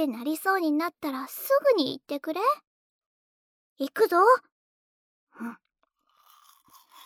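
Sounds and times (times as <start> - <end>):
speech: 0.0 - 2.7, 3.8 - 4.5, 5.4 - 5.6
toothbrush brushing back teeth: 6.0 - 7.0.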